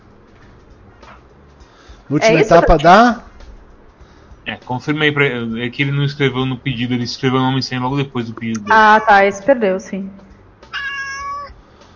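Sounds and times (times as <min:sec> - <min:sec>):
speech: 0:02.1 - 0:03.2, 0:04.5 - 0:10.2
cat meowing: 0:08.6 - 0:09.6, 0:10.7 - 0:11.6.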